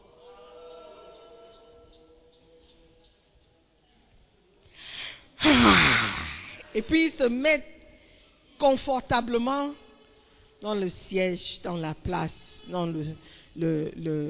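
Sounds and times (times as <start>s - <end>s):
person yawning exaggeratedly in church: 5.4s - 6.6s
speech: 6.8s - 7.7s, 8.6s - 9.8s, 10.6s - 14.2s.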